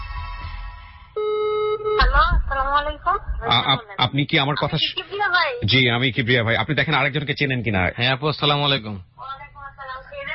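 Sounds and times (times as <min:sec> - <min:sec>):
telephone tone as a phone call is placed: 0:01.2 - 0:02.2
speech: 0:02.8 - 0:09.1.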